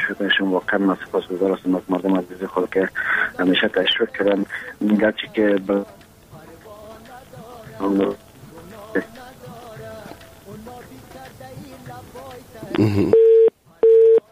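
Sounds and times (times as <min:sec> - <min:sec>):
speech: 0:00.1 - 0:06.0, 0:07.8 - 0:08.2, 0:08.9 - 0:09.2, 0:12.7 - 0:13.3
telephone busy signal after a dropped call: 0:13.1 - 0:14.3.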